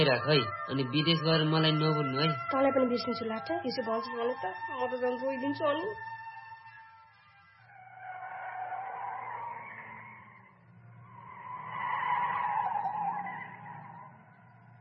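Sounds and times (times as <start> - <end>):
speech: 0.0 - 6.2
vehicle engine droning as it arrives: 7.8 - 14.8.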